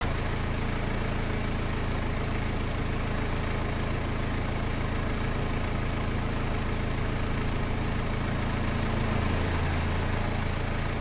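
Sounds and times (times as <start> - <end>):
car engine idling: 0.0 - 10.9.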